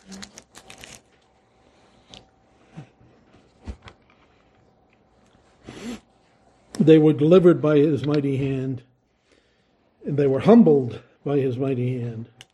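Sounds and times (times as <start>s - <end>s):
cough drop wrapper being twisted open: 0.0s - 1.3s
speech: 6.9s - 8.9s, 10.1s - 12.4s.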